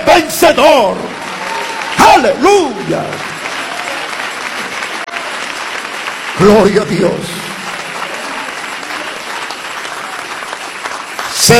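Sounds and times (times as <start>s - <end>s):
church congregation applauding during a worship service: 0.0s - 11.5s
speech: 0.2s - 1.2s, 2.0s - 3.3s, 6.4s - 7.4s.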